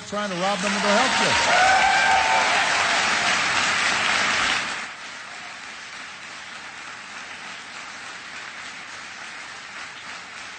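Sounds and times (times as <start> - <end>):
large audience applauding: 0.0 - 10.5
speech: 0.1 - 2.4
large audience cheering: 0.1 - 5.8.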